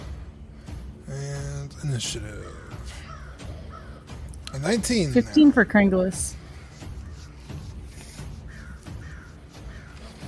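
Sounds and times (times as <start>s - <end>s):
speech: 1.8s - 2.6s, 4.6s - 6.4s
two large crows cawing: 2.3s - 4.3s, 6.4s - 10.2s.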